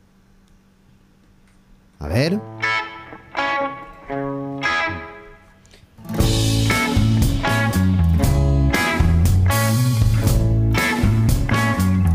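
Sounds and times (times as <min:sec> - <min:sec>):
speech: 0:02.0 - 0:02.6
effects-laden guitar chords: 0:02.3 - 0:12.1
rock band with distorted guitars and steady drums: 0:02.4 - 0:05.4, 0:06.0 - 0:12.1.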